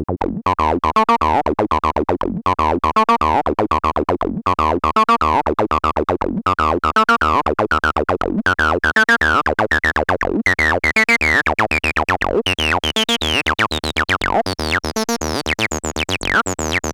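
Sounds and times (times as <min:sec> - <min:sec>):
acid bassline with Opamp 21 distortion: 0:00.2 - 0:16.9.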